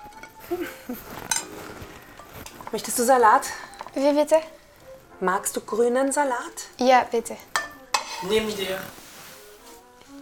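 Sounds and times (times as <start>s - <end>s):
plates and cutlery clinking while serving a meal: 0.0s - 4.4s, 7.5s - 9.1s
speech: 0.5s - 1.3s, 2.7s - 4.6s, 5.2s - 7.5s, 8.2s - 9.0s.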